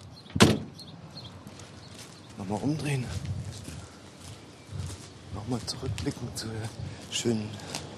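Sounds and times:
window banging shut: 0.3 - 0.7
speech: 2.5 - 3.3, 5.5 - 7.8.

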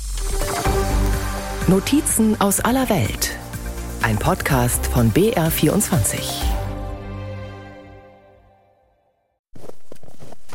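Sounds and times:
musical chord: 0.2 - 9.3
speech: 1.7 - 3.4, 4.0 - 6.5
footsteps crunching in snow: 9.5 - 10.5.

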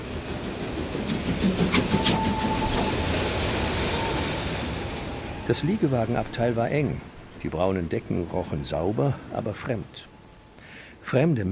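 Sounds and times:
steam locomotive rumbling and hissing pulling into a station: 0.0 - 9.4
thin brake squeal: 1.8 - 4.7
speech: 5.5 - 10.1, 11.1 - 11.5.

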